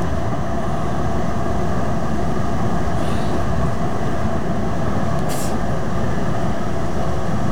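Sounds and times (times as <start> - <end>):
transport vehicle ambience: 0.0 - 7.4.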